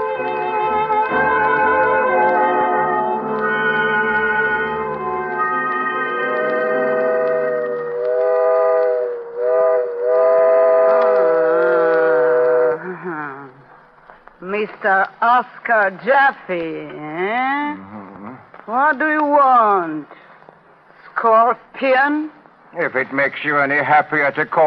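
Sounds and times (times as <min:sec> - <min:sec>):
steam train whistle blowing chords: 0:00.0 - 0:12.9
low rumble of a running train: 0:00.0 - 0:15.2
speech: 0:14.8 - 0:17.8, 0:18.7 - 0:20.2, 0:21.2 - 0:24.6.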